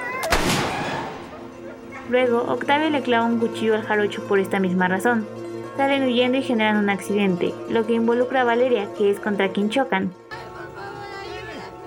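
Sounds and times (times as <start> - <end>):
gunshot: 0.3 - 1.5
speech: 2.1 - 10.2.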